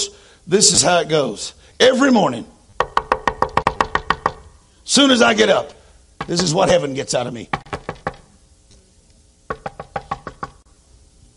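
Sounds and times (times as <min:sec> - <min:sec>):
speech: 0:00.5 - 0:02.6, 0:04.9 - 0:07.6
knocking on a door: 0:02.8 - 0:04.4, 0:06.2 - 0:06.6, 0:07.5 - 0:08.3, 0:09.5 - 0:10.6.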